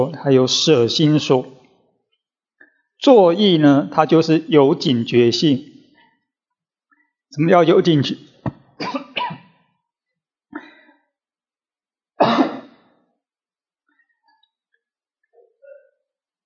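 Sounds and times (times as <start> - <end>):
speech: 0.0 - 1.6, 3.0 - 5.7, 7.3 - 9.0
person coughing: 8.8 - 9.6, 10.6 - 10.9, 12.2 - 12.8.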